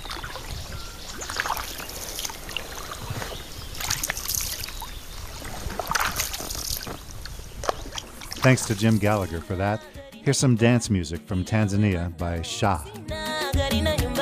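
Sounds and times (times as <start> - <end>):
canoe paddle pulling through water: 0.0 - 9.5
speech: 8.4 - 14.1.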